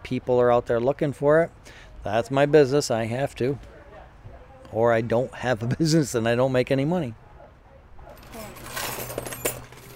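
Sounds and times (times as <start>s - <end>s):
speech: 0.1s - 3.7s, 4.7s - 7.2s
laughter: 5.5s - 6.1s
secondhand keys jangling: 8.2s - 9.9s.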